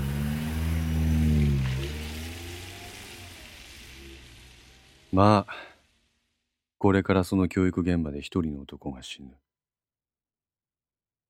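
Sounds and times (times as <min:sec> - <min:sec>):
car engine pulling away: 0:00.0 - 0:06.5
speech: 0:05.2 - 0:05.7, 0:06.8 - 0:09.5.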